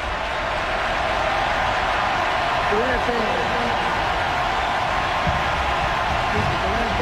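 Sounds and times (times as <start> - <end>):
huge stadium crowd roaring during a football game: 0.0 - 7.0.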